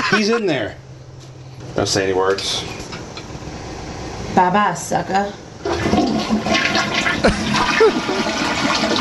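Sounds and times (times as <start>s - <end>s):
speech: 0.2s - 0.8s, 1.8s - 2.8s, 4.4s - 6.0s
toilet flushing: 5.6s - 8.9s.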